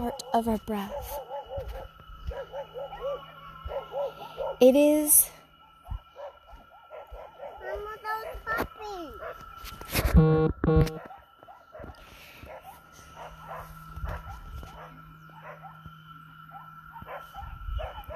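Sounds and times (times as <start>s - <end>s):
speech: 0.1s - 1.3s, 4.6s - 5.3s, 9.6s - 11.1s
puppy barking and yipping: 0.1s - 4.6s, 6.2s - 8.6s, 9.2s - 9.6s, 11.0s - 15.8s, 16.5s - 18.1s.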